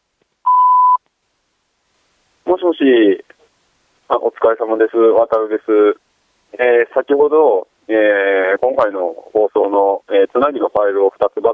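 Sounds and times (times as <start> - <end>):
voicemail recording start electronic beep: 0.5 - 1.0
speech: 2.5 - 3.4, 4.1 - 11.5.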